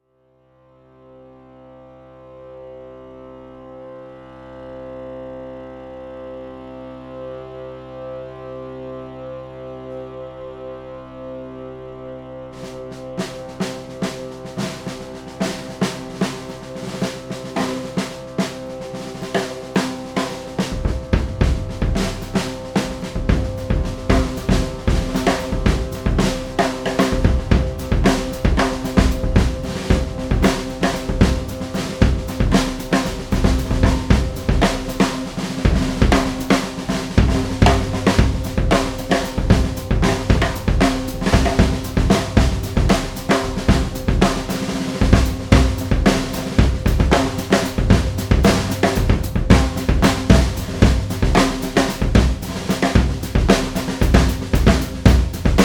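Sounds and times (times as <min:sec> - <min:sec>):
drums: 0:12.6 - 0:55.6
drone: 0:16.0 - 0:55.6.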